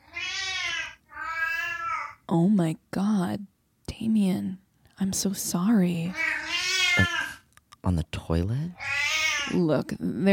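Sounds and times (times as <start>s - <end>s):
cat meowing: 0.0s - 2.2s, 6.1s - 7.4s, 8.8s - 9.6s
speech: 2.3s - 6.4s, 7.0s - 8.9s, 9.5s - 10.3s.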